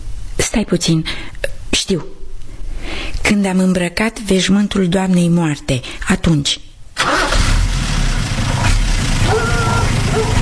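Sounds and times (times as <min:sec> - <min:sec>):
speech: 0:00.5 - 0:02.2, 0:03.3 - 0:06.6
truck engine turning over and rumbling steadily: 0:07.0 - 0:10.3.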